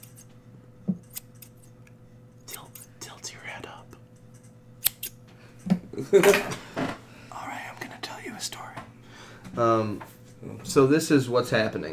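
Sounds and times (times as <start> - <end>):
scissors snipping: 0.0 - 0.3, 1.0 - 3.0, 4.3 - 5.2
low steady hum: 0.0 - 11.9
speech: 6.0 - 6.6, 9.6 - 10.1, 10.7 - 11.9.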